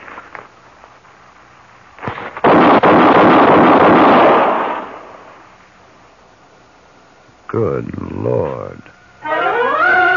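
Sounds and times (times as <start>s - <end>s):
gunshots fired from a loaded gun: 2.0s - 5.3s
speech: 7.6s - 8.9s.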